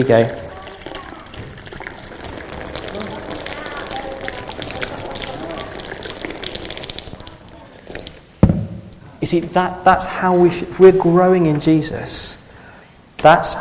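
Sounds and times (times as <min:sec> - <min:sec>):
speech: 0:00.0 - 0:00.5, 0:09.2 - 0:12.4, 0:13.2 - 0:13.5
water pouring into a cup until it overflows: 0:00.0 - 0:08.2.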